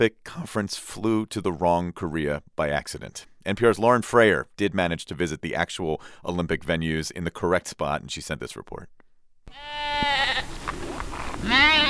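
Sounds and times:
speech: 0.0s - 10.7s
sheep bleating on a hilly farm in Pyeongchang: 9.5s - 10.5s, 11.4s - 11.8s.

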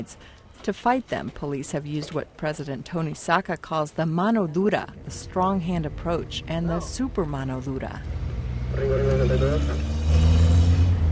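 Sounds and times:
speech: 0.0s - 10.4s
rickety police pickup truck engine rumbling while driving through streets: 4.9s - 11.1s.

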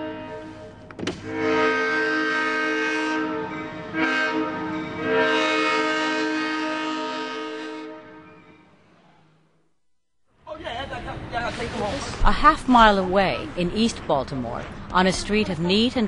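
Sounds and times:
Amtrak train horn blaring: 0.0s - 9.0s
passing Amtrak train rumbling: 0.0s - 9.5s, 10.4s - 16.0s
speech: 1.0s - 1.5s, 12.7s - 16.0s.

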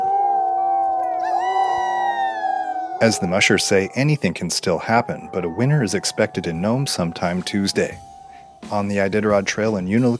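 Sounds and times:
sled dogs from racing teams howling on the trail at Unalakleet, Alaska: 0.0s - 10.1s
speech: 3.0s - 8.1s, 8.7s - 10.1s.

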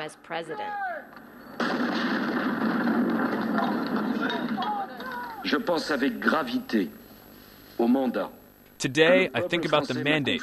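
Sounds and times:
speech: 0.0s - 2.2s, 3.2s - 4.8s, 5.4s - 7.0s, 7.8s - 10.4s
ceremonial cannon salute blast: 1.6s - 4.6s.

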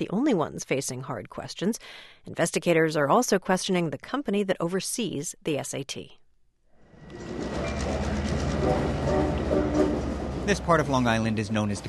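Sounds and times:
speech: 0.0s - 6.2s, 10.5s - 11.8s
commuter train rumbling along rails on Long Island: 6.8s - 11.8s.

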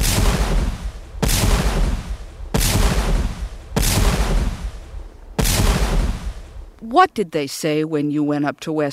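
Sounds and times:
cannon fire: 0.0s - 6.7s
speech: 6.9s - 8.9s.

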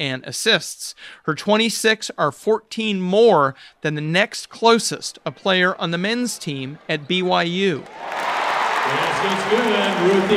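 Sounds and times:
speech: 0.0s - 8.2s, 8.9s - 10.3s
basketball arena crowd cheering a made basket: 5.8s - 10.3s.

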